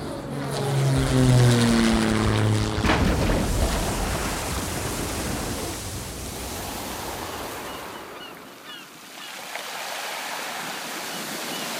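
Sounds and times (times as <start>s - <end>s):
broad rushing roar: 0.0s - 8.2s
propeller airplane engine droning in a staged emergency landing: 0.0s - 8.8s.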